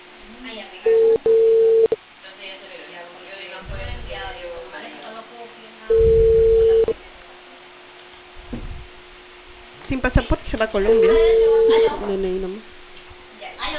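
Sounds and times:
WhatsApp call ringing tone beep pair: 0:00.9 - 0:02.0, 0:05.9 - 0:07.0, 0:11.0 - 0:11.9
speech: 0:10.8 - 0:12.7.

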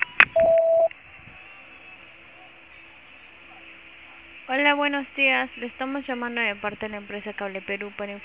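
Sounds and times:
mid-pitched voicemail beep tone: 0:00.2 - 0:00.9
speech: 0:04.8 - 0:08.2.

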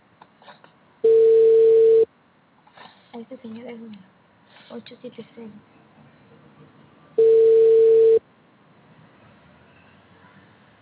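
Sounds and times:
telephone ringback tone on an unanswered call: 0:01.0 - 0:02.1, 0:07.2 - 0:08.2
speech: 0:03.4 - 0:05.8.

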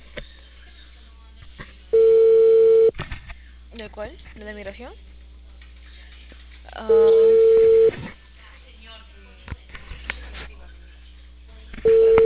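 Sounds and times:
telephone ringback tone as a call is placed: 0:02.0 - 0:02.9, 0:06.9 - 0:07.9, 0:11.9 - 0:12.2
speech: 0:03.8 - 0:05.1, 0:06.8 - 0:07.3.

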